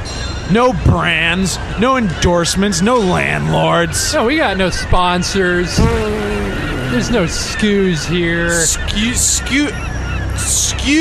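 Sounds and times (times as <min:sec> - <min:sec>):
speech: 0:00.5 - 0:06.2, 0:06.9 - 0:11.0
black-spotted seagull squawking: 0:05.8 - 0:10.7.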